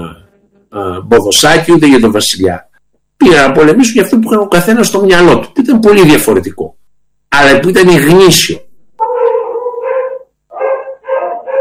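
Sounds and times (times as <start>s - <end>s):
speech: 0.2s - 8.6s
dogs barking: 9.0s - 11.6s.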